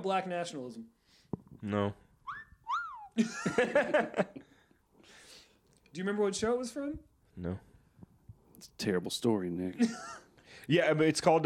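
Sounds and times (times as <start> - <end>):
speech: 0.0 - 1.0, 1.6 - 2.0, 3.2 - 4.5, 6.0 - 7.7, 8.6 - 11.4
slide whistle glides: 2.3 - 3.1
burst of loud laughter: 3.1 - 4.5.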